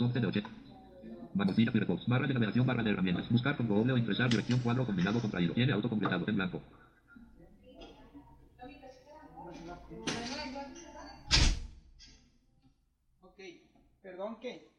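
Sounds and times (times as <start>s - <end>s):
speech: 0.0s - 0.7s, 1.3s - 6.9s, 14.0s - 14.7s
door pulled shut with a solid thud: 11.3s - 11.7s.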